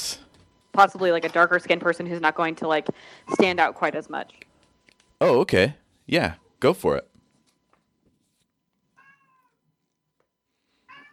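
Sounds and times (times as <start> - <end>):
faint hum: 0.0 - 11.1
speech: 0.8 - 4.4, 5.2 - 7.1
cat meowing loudly: 9.0 - 9.6, 10.9 - 11.1.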